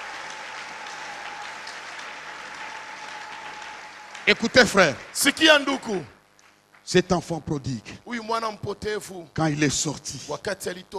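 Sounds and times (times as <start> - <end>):
church congregation applauding during a service: 0.0 - 7.0
speech: 4.3 - 6.2, 6.9 - 10.9.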